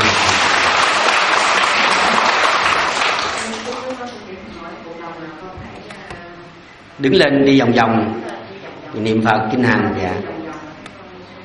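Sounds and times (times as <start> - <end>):
audience applauding: 0.0 - 4.1
speech: 7.0 - 8.3, 9.0 - 10.4.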